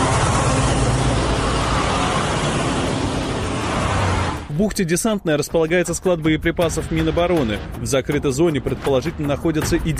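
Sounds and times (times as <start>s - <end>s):
constant traffic roar: 0.0s - 4.7s
heavy trucks rumbling along a road: 0.0s - 7.8s
speech: 4.6s - 9.9s.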